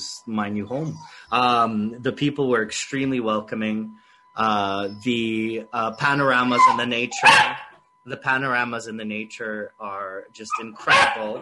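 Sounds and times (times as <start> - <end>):
speech: 0.2 - 11.3
small puppy whining: 0.8 - 1.3, 6.4 - 7.7, 10.5 - 10.9.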